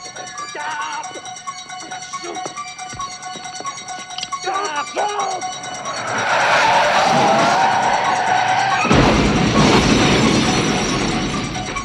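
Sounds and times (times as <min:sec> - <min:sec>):
car tires screeching in a long skid: 0:04.6 - 0:11.5
rumbling clattering noise as the collision settles: 0:05.6 - 0:11.8
heavy crashing impact of collision: 0:06.1 - 0:11.8.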